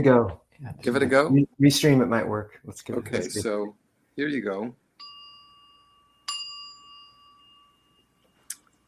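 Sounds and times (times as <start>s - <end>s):
speech: 0.0s - 4.8s
small bell struck and ringing: 5.0s - 8.5s.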